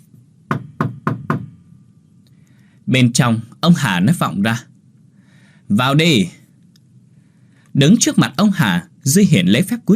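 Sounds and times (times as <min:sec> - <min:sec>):
knocking on a door from outside: 0:00.5 - 0:01.6
speech: 0:02.9 - 0:04.7, 0:05.7 - 0:06.4, 0:07.8 - 0:09.9.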